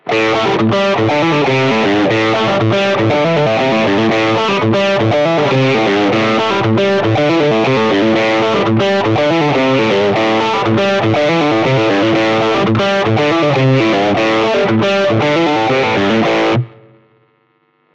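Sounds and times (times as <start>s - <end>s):
overdriven electric guitar with P90 pickups: 0.0s - 17.9s.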